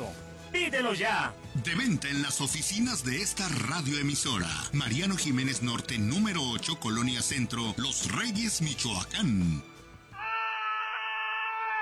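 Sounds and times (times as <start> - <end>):
speech: 0.5 - 9.7
high-pitched scream as a comedic radio sound effect: 10.2 - 11.8.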